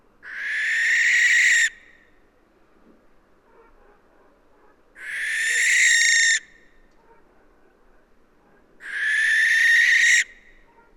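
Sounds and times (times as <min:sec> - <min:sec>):
barn owl screech, Tyto alba: 0:00.2 - 0:01.9, 0:05.0 - 0:06.5, 0:08.8 - 0:10.4.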